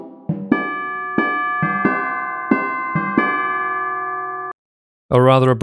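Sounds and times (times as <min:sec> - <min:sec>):
struck high timpani notes: 0:00.4 - 0:03.6
tubular bells ringing: 0:00.5 - 0:04.5
speech: 0:05.2 - 0:05.6.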